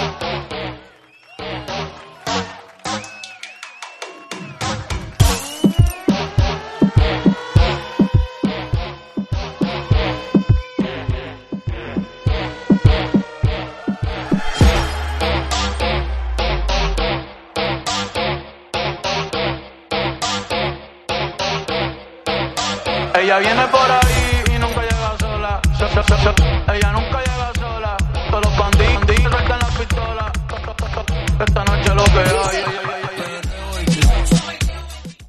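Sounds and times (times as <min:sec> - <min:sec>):
New Year show opening music without voice: 0:00.1 - 0:35.2.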